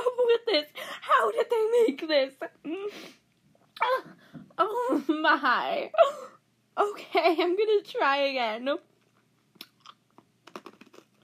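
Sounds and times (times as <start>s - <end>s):
speech: 0.4s - 3.2s, 3.8s - 8.9s
hard sour candy being chewed: 8.9s - 11.2s.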